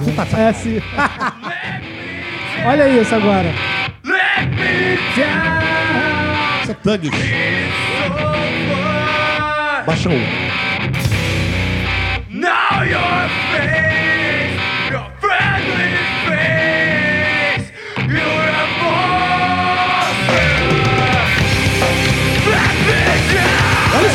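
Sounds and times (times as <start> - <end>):
laughter: 0.0 - 2.4, 5.1 - 7.6
distorted guitars in a hardcore song: 0.0 - 24.1
speech: 0.1 - 1.5, 2.6 - 3.9, 4.6 - 6.1, 6.7 - 7.4, 9.8 - 11.0
harsh screamed dog-like vocals: 1.4 - 9.9, 12.3 - 24.1
pounding drums in a hardcore song: 20.0 - 24.1.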